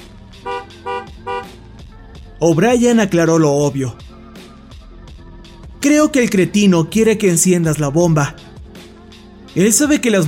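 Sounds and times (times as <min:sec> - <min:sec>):
car horn honking beside a gas pump: 0:00.4 - 0:01.6
speech: 0:02.4 - 0:04.0, 0:05.8 - 0:08.4, 0:09.6 - 0:10.2.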